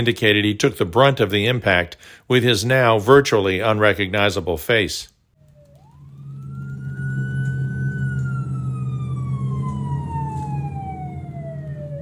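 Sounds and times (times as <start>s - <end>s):
speech: 0.0s - 5.1s
ambulance and fire truck siren wailing at a car crash: 5.4s - 12.0s
heavy steady emergency vehicle engine rumble: 5.9s - 12.0s.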